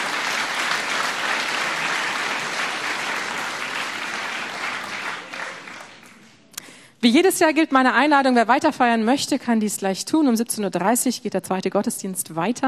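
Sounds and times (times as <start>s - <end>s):
audience applause in church: 0.0s - 6.3s
speech: 7.0s - 12.6s.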